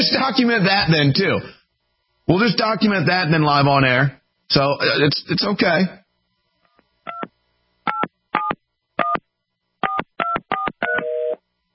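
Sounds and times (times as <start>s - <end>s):
speech: 0.0s - 1.6s, 2.3s - 6.0s
steady telephone tone as the call fails: 9.8s - 11.4s.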